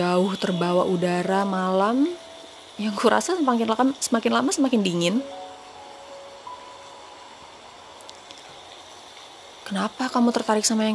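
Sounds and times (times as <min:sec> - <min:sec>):
speech: 0:00.0 - 0:05.4, 0:09.7 - 0:10.9
steady hissing rain: 0:00.0 - 0:10.9.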